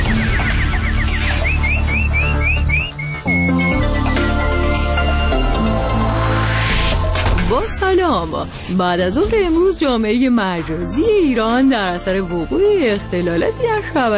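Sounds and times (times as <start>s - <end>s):
loud busy music: 0.0s - 8.5s
rising bird-like chirps: 0.2s - 4.4s
speech: 8.1s - 14.1s.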